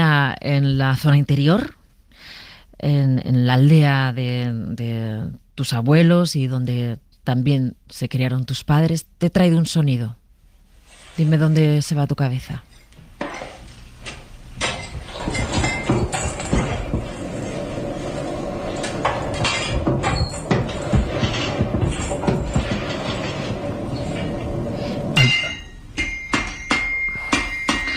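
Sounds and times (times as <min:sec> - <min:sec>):
speech: 0:00.3 - 0:01.8, 0:02.8 - 0:10.2, 0:11.2 - 0:12.7
power hammer tempering a sickle: 0:14.6 - 0:27.9.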